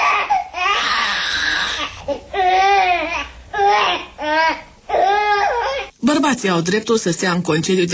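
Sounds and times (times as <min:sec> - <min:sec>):
baby crying: 0:00.0 - 0:05.9
speech: 0:06.4 - 0:07.9.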